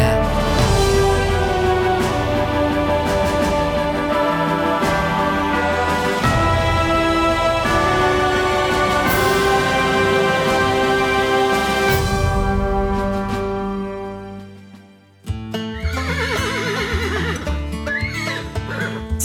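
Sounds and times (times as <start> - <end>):
sustained tones: 0.0 - 14.4
horse neighing: 15.7 - 19.0.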